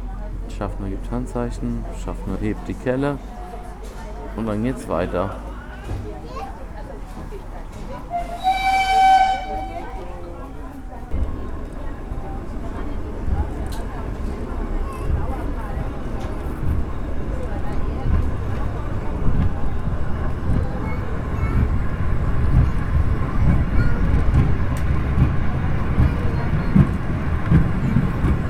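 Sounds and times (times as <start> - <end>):
small T3 steam locomotive running slowly through a cornfield: 0.0 - 28.4
speech: 0.6 - 3.4, 4.4 - 6.4
brief high whistle-like tone of a small T3 steam locomotive: 8.1 - 10.2.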